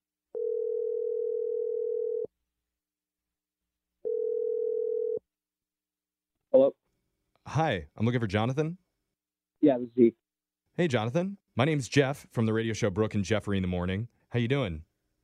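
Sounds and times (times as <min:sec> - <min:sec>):
telephone dial tone: 0:00.3 - 0:02.3, 0:04.1 - 0:05.2
speech: 0:07.6 - 0:08.9, 0:09.7 - 0:10.2, 0:10.8 - 0:14.9.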